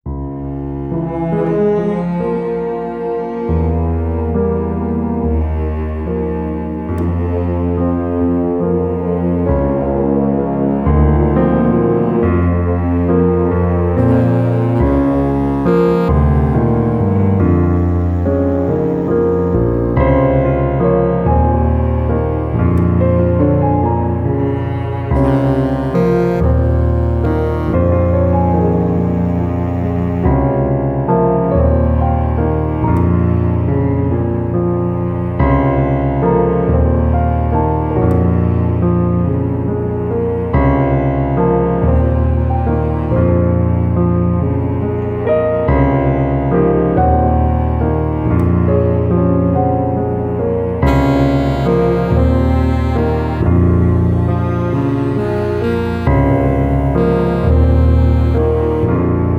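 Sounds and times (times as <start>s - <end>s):
cello: 0.1s - 59.3s
piano: 0.1s - 59.3s
clarinet: 11.4s - 20.2s, 23.0s - 30.9s, 49.6s - 59.3s
brass: 13.9s - 20.1s, 24.3s - 30.6s, 50.8s - 59.3s.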